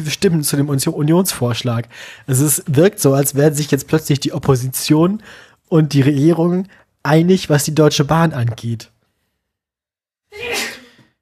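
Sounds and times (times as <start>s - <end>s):
speech: 0.0s - 8.9s
person sneezing: 10.3s - 11.1s.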